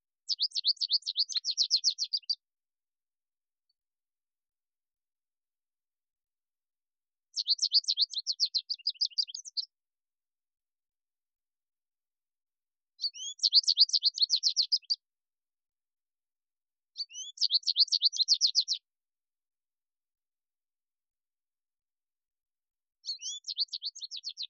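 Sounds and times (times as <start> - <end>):
American Goldfinch singing: 0.3 - 2.4, 7.3 - 9.7, 13.0 - 15.0, 17.0 - 18.8, 23.0 - 24.4.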